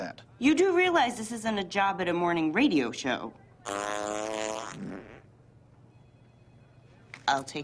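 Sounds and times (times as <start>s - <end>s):
speech: 0.4s - 5.0s, 7.3s - 7.6s
loud buzzy fart: 3.6s - 5.3s.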